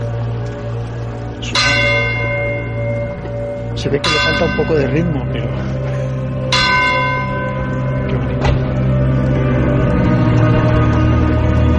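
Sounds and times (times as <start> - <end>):
steady low drone: 0.0 - 11.7
church bell striking with a bright metallic clang: 1.4 - 9.4
speech: 3.8 - 5.9.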